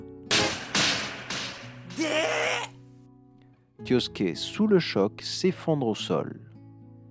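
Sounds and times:
sharp slap to the face echoing in a street: 0.3 - 2.4
wavering tonal cry: 1.9 - 2.7
speech: 3.8 - 6.5.

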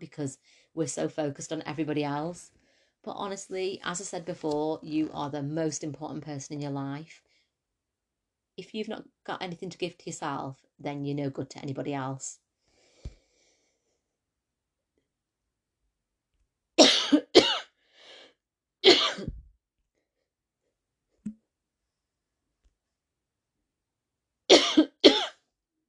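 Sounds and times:
speech: 0.1 - 7.3, 8.6 - 12.4
harsh hacking coughing fit: 16.8 - 17.7, 18.8 - 19.4, 24.5 - 25.4.

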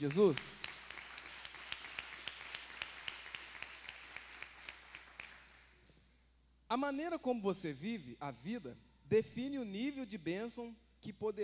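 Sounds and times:
speech: 0.0 - 0.6, 6.7 - 11.4
crowd applauding: 0.0 - 5.8.

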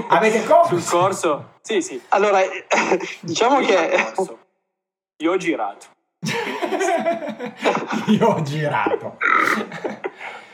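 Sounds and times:
speech: 0.0 - 4.4, 5.2 - 10.4
laughter: 6.2 - 10.4
loud burp: 9.2 - 9.7.

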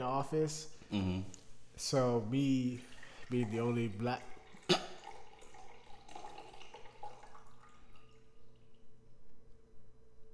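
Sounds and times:
speech: 0.0 - 4.8
faint low hum: 0.0 - 10.3
drink pouring into a glass: 2.0 - 8.9.

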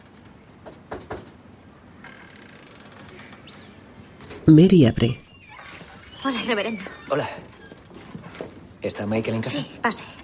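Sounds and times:
knocking on a house's front door: 0.6 - 1.4
speech: 4.5 - 5.2, 6.3 - 7.5, 8.8 - 10.2.

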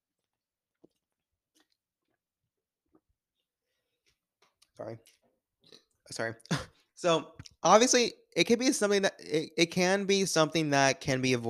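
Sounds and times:
person sipping water: 0.7 - 2.2
speech: 4.8 - 5.2, 6.1 - 11.4.

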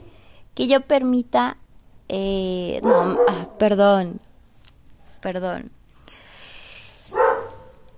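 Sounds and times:
speech: 0.6 - 4.3, 5.2 - 5.8
neighbor's small dog barking: 2.8 - 3.6, 7.1 - 7.9.

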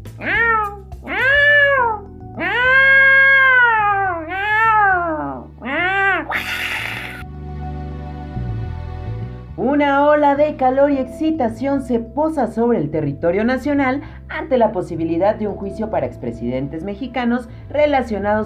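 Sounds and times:
cat meowing: 0.2 - 7.2
speech: 10.4 - 18.4.

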